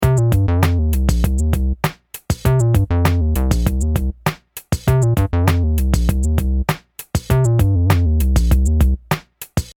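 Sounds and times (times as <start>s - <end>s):
Minimoog square bass: 0.0s - 1.8s, 2.5s - 4.2s, 4.9s - 6.7s, 7.3s - 9.0s.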